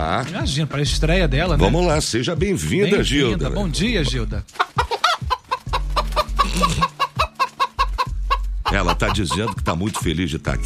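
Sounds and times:
speech: 0:00.0 - 0:04.8, 0:08.9 - 0:10.6
hen clucking: 0:02.9 - 0:10.2.

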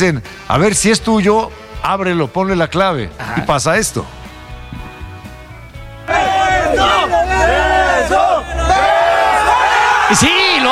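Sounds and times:
speech: 0:00.0 - 0:04.2, 0:10.1 - 0:10.7
large crowd cheering and shouting in chant-like waves: 0:06.0 - 0:10.7.

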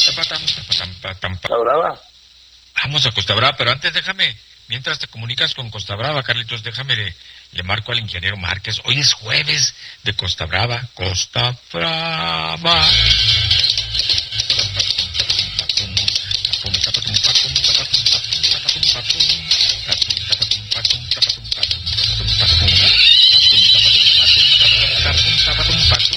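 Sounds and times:
speech: 0:00.1 - 0:02.1, 0:02.8 - 0:13.5
steady noisy background: 0:12.7 - 0:26.1
horse whinnying and neighing: 0:22.2 - 0:26.0.

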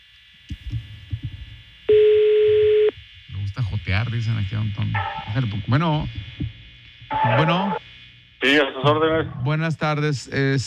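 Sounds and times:
soft low thumps and clicks: 0:00.5 - 0:01.6, 0:06.0 - 0:07.1
telephone ringback tone of an on-air call to a churro seller: 0:01.9 - 0:02.9
speech: 0:03.6 - 0:06.4, 0:07.2 - 0:07.8, 0:08.4 - 0:10.6.

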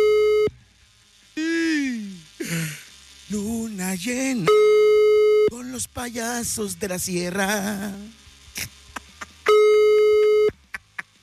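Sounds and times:
telephone line beep after dialing a number: 0:00.0 - 0:00.5, 0:09.5 - 0:10.6
falling voice-like sounds: 0:01.4 - 0:02.8
speech: 0:04.0 - 0:04.8, 0:05.9 - 0:08.7.

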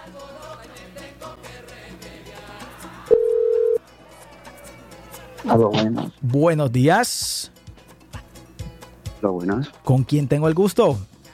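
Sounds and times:
telephone line beep: 0:03.1 - 0:03.8
speech: 0:05.4 - 0:07.4, 0:09.2 - 0:11.1.

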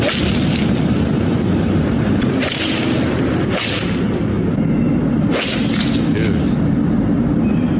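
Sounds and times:
golf balls smacking into cars and buildings: 0:00.0 - 0:01.2, 0:02.0 - 0:06.2
steady roar of traffic: 0:00.0 - 0:07.7.

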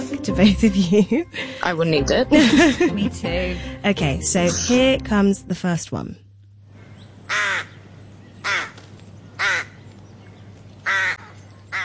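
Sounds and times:
laughter: 0:00.0 - 0:03.7
low steady hum: 0:00.0 - 0:11.8
speech: 0:00.2 - 0:06.2
rook calling in harsh raspy caws: 0:06.7 - 0:09.8, 0:10.8 - 0:11.8.

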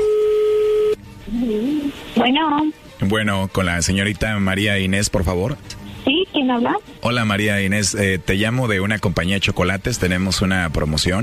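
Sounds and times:
steady telephone line tone: 0:00.0 - 0:01.0
speech: 0:02.2 - 0:05.8, 0:06.4 - 0:11.2.

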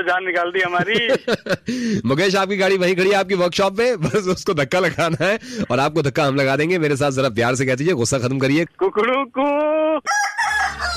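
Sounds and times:
speech: 0:00.0 - 0:10.3
laughter: 0:00.6 - 0:01.7
rooster crowing: 0:10.1 - 0:10.9.

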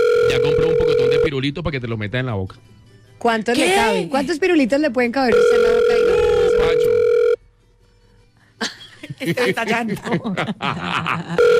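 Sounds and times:
telephone ringback tone on an unanswered call: 0:00.0 - 0:01.3, 0:05.3 - 0:07.4, 0:11.4 - 0:11.5
speech: 0:00.3 - 0:07.0, 0:09.2 - 0:11.5
laughter: 0:08.6 - 0:11.5.

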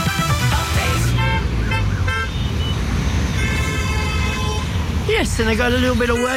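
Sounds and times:
road traffic roar: 0:00.0 - 0:06.3
car horn toots: 0:00.8 - 0:04.8
speech: 0:05.3 - 0:06.3.

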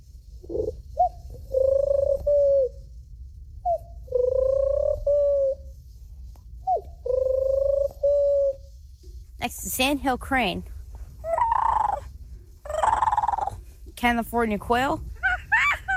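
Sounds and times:
low rumble: 0:00.0 - 0:15.9
boy imitating pigeon cooing: 0:00.5 - 0:02.7, 0:03.7 - 0:05.6, 0:06.7 - 0:08.6, 0:11.2 - 0:13.7
speech: 0:09.8 - 0:10.7, 0:14.0 - 0:15.1.

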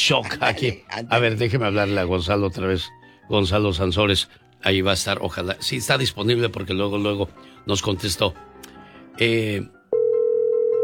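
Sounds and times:
speech: 0:00.1 - 0:08.5, 0:09.2 - 0:09.8
dial tone after a phone call drops: 0:09.9 - 0:10.8.

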